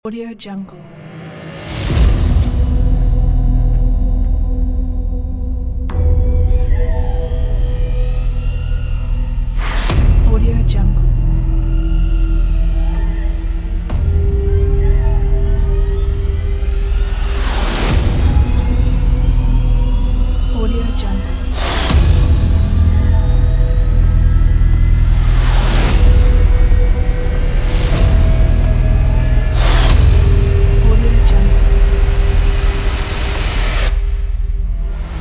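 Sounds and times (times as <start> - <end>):
horror suspense trailer music: 0.6 - 35.1.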